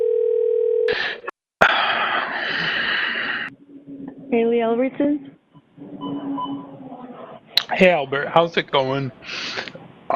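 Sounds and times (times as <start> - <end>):
telephone dial tone: 0.0 - 0.9
telephone line noise: 1.6 - 10.1
speech: 4.3 - 5.4, 7.7 - 10.1.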